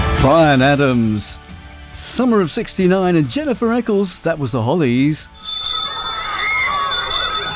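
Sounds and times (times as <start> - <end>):
speech: 0.2 - 5.7
school bell ringing: 5.4 - 7.5.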